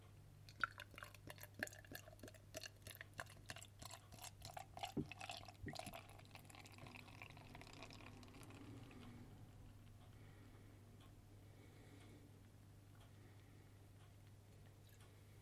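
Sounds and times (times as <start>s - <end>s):
beer pouring into a glass: 0.5s - 9.0s
faint constant hum: 3.6s - 15.4s.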